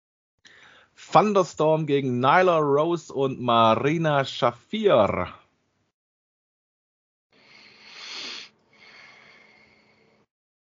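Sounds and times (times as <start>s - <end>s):
heavy huffing breaths into the microphone: 0.5s - 1.0s, 7.4s - 10.3s
speech: 1.0s - 5.4s.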